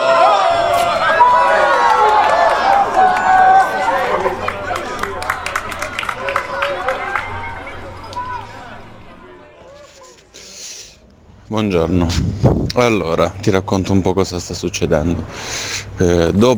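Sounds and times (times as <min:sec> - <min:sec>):
audience cheering: 0:00.0 - 0:10.2
scattered applause: 0:00.0 - 0:10.2
audience chattering loudly: 0:00.0 - 0:12.2
speech: 0:11.6 - 0:16.5.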